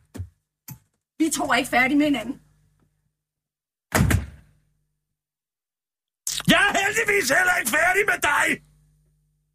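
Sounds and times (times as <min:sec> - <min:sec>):
speech: 0:01.2 - 0:02.4, 0:07.0 - 0:08.7
door swinging shut with a thud: 0:03.9 - 0:04.4
loud knock or bump: 0:03.9 - 0:04.4.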